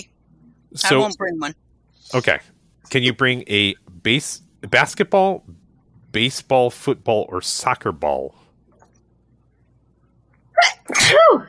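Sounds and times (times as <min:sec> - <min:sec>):
speech: 0:00.7 - 0:08.4, 0:10.6 - 0:11.4
person sneezing: 0:10.6 - 0:11.4.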